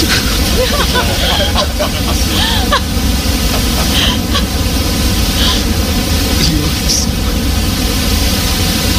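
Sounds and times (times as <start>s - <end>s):
laughter: 0.0s - 5.8s
generated brown noise: 0.0s - 8.9s.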